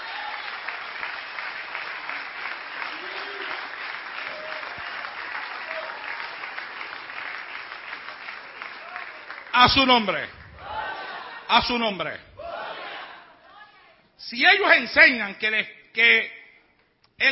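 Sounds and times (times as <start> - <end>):
church congregation applauding: 0.0 - 12.0
speech: 9.6 - 10.4, 11.5 - 12.3, 14.2 - 16.4.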